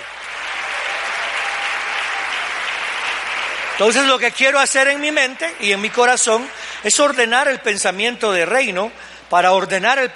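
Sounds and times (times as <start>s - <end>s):
large audience applauding loudly: 0.0s - 7.2s
speech: 3.8s - 10.1s.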